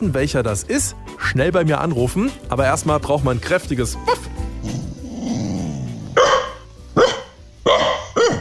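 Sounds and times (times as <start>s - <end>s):
speech: 0.0s - 4.8s
dog growling: 4.6s - 6.6s
dog barking: 6.2s - 8.3s.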